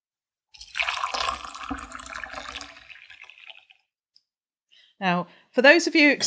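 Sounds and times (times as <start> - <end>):
water pouring from a jug into a glass: 0.6 - 3.9
speech: 5.0 - 6.2.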